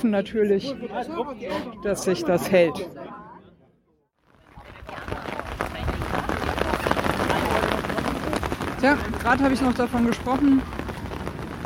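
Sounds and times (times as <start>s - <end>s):
speech: 0.0s - 3.2s, 8.8s - 10.8s
dense rain downpour: 4.3s - 11.6s.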